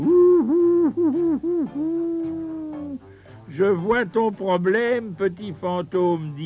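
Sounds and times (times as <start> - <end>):
owl hooting: 0.0 - 3.0
speech: 1.1 - 2.2, 3.6 - 6.4.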